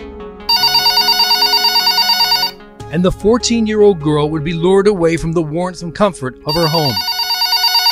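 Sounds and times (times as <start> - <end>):
telephone ringing with an electronic trill: 0.5 - 2.6, 6.5 - 7.9
speech: 2.9 - 7.1.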